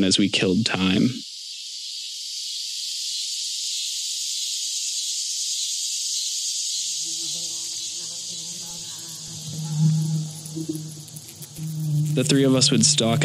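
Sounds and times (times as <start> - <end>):
speech: 0.0 - 1.3, 12.2 - 13.2
chorus of cicadas in oak, pine and maple trees on a hot Indiana summer day: 0.0 - 13.2
fainter lower hums and murmurs: 9.3 - 13.2.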